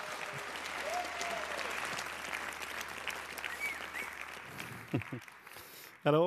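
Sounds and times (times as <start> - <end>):
audience applause in a large room: 0.0 - 6.2
faint whistles from the crowd: 3.4 - 4.2
speech: 4.9 - 5.4, 6.0 - 6.2.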